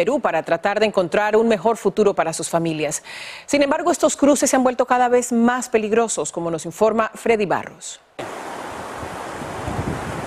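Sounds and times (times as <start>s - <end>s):
speech: 0.0s - 8.5s
river water rushing on the border between Ecuador and Colombia: 8.2s - 10.2s.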